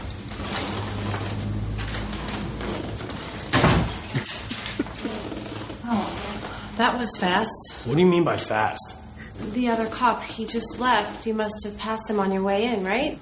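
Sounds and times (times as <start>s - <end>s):
steady noise: 0.0s - 13.2s
door creaking open: 0.2s - 6.6s
door bumping as it swings: 3.5s - 4.1s
speech: 6.8s - 13.2s.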